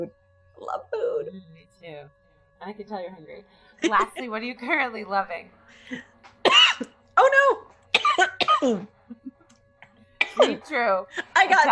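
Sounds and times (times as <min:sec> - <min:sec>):
speech: 0:00.0 - 0:06.1, 0:08.6 - 0:09.2, 0:10.4 - 0:11.7
person coughing: 0:06.5 - 0:09.2, 0:10.2 - 0:10.6.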